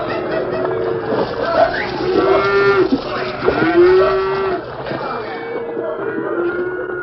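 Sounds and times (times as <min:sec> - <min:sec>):
cattle splashing across a river ford: 0:00.0 - 0:07.0
laughter: 0:00.0 - 0:07.0
herd of cattle mooing: 0:00.4 - 0:07.0.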